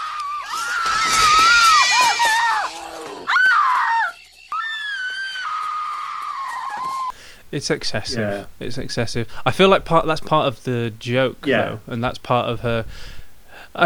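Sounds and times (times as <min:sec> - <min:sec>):
woman screaming in a film excerpt: 0:00.4 - 0:07.1
speech: 0:07.5 - 0:13.2.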